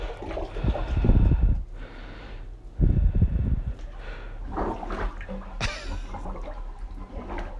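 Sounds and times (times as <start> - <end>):
plunger plunging a clogged toilet full of water: 0.0 - 1.6, 3.8 - 7.5.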